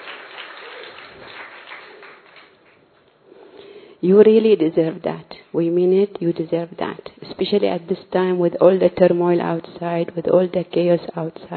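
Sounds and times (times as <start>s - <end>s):
audience applauding, many hands clapping: 0.0s - 2.8s
speech: 4.0s - 11.5s.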